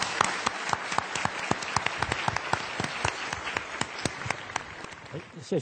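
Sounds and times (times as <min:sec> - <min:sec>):
conference audience applause: 0:00.0 - 0:05.4.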